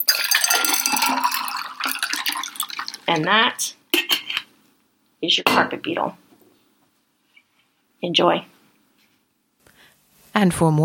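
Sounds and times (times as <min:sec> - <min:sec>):
cocktail poured from a shaker into a glass: 0:00.0 - 0:03.4
speech: 0:03.1 - 0:03.8, 0:05.2 - 0:06.2, 0:08.0 - 0:08.5, 0:10.4 - 0:10.8.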